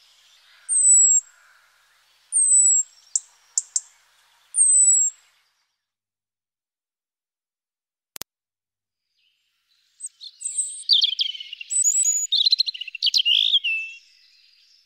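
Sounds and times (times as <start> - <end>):
European robin sharp ticks: 0.0 - 5.3, 10.0 - 14.0
European robin calling with high thin descending whistles: 0.7 - 1.2, 2.3 - 3.9, 4.5 - 5.2, 10.1 - 14.0.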